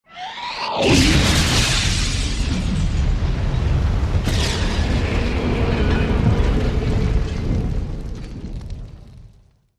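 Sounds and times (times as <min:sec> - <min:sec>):
fire rush explosion with metal and glass debris: 0:00.9 - 0:09.7
metal and glass debris: 0:01.1 - 0:08.7.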